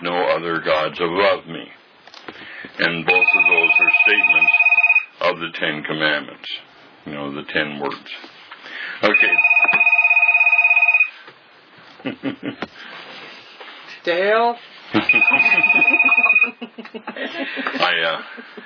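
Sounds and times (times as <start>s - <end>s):
speech: 0.0s - 1.8s, 2.8s - 8.4s, 9.0s - 9.8s, 12.0s - 13.0s, 14.0s - 18.6s
telephone ringing with a steady electronic tone: 3.1s - 5.2s, 9.0s - 11.2s, 15.0s - 16.6s
laughter: 12.0s - 12.6s, 14.9s - 18.6s.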